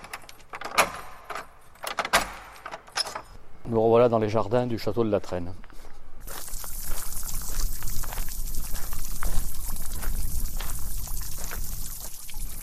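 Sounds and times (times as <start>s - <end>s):
speech: 3.7s - 5.7s
fountain jet splashing in a formal French-style château garden surrounded by forest: 6.2s - 12.6s.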